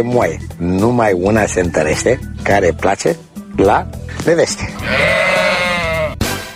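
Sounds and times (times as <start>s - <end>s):
speech: 0.0s - 5.4s
sheep bleating: 4.7s - 6.3s.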